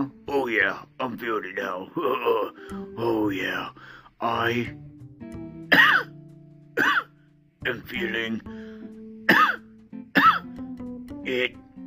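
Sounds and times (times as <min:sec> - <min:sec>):
speech: 0:00.0 - 0:04.9, 0:07.6 - 0:08.8, 0:11.3 - 0:11.6
person coughing harshly: 0:05.7 - 0:06.1, 0:06.8 - 0:07.1, 0:09.3 - 0:09.6, 0:10.2 - 0:10.5.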